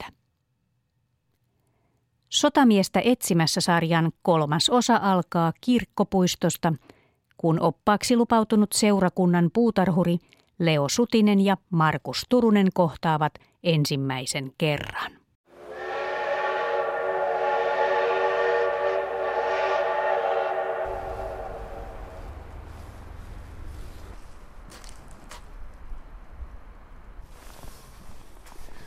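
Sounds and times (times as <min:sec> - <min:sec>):
speech: 0:02.4 - 0:15.2
passenger train whistle blowing at Lieksa: 0:15.5 - 0:22.8
station noise: 0:15.5 - 0:23.6
passenger train rolling in with rumble and clatter at Lieksa: 0:15.9 - 0:27.2.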